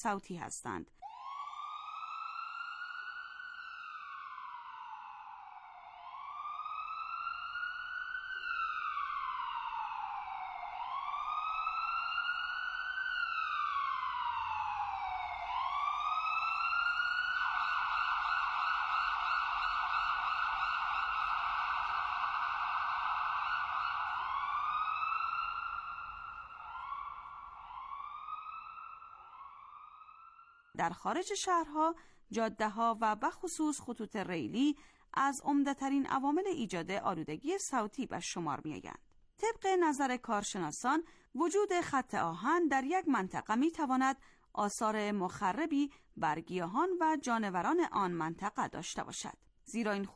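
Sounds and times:
speech: 0.0s - 1.1s, 30.8s - 50.1s
ambulance siren wailing: 1.0s - 30.8s.

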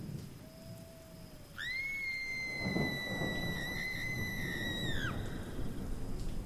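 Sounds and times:
rain shower: 0.0s - 6.4s
high sustained whistling tone: 1.6s - 5.5s.

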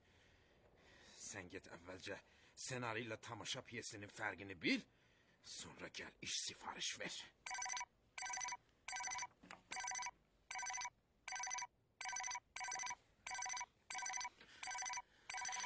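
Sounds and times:
speech: 1.3s - 7.4s
telephone ringing with bright electronic ring bursts: 7.5s - 15.6s.

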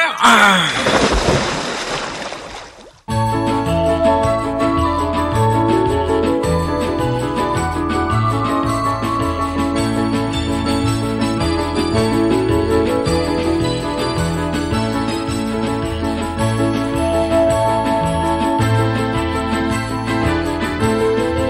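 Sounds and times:
water thrown forcefully onto statues: 0.0s - 3.1s
steady music bed: 3.1s - 21.4s.

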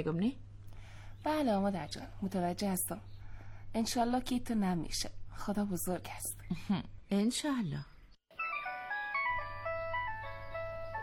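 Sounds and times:
speech: 0.0s - 0.5s, 1.2s - 7.9s
phone ringing with a bright electronic melody: 8.3s - 11.0s.

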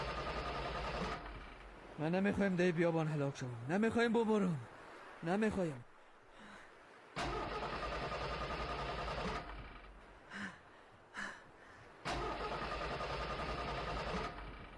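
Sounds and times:
car engine cranking but failing to start: 0.0s - 1.8s, 7.2s - 10.0s, 12.0s - 14.7s
speech: 2.0s - 5.9s.

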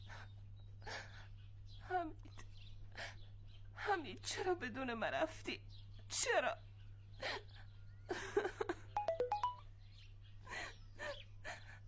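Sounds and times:
speech: 1.8s - 2.4s, 3.9s - 8.5s
phone text message alert chime of bright electronic notes: 9.0s - 9.6s.

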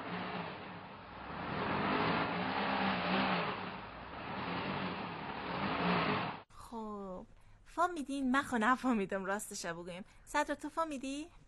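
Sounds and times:
car driving by and accelerating: 0.0s - 6.5s
road noise: 0.0s - 6.5s
speech: 7.8s - 11.4s.

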